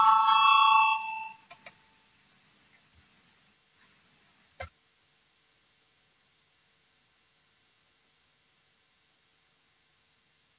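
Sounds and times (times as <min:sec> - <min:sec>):
parliamentary voting bell ringing: 0:00.0 - 0:01.5.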